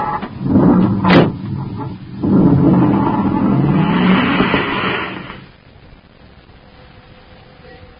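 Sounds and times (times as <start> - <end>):
car engine roaring as the car speeds off: 0.2 - 5.5
car doors slamming shut: 0.9 - 1.5.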